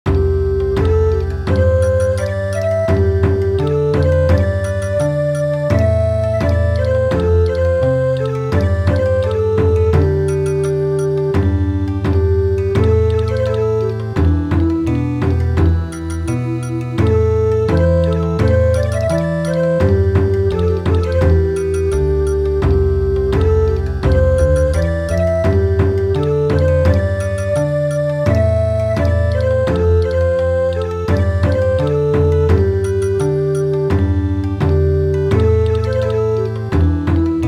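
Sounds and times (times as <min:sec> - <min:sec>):
traditional folk dance music in midi: 0:00.1 - 0:37.4.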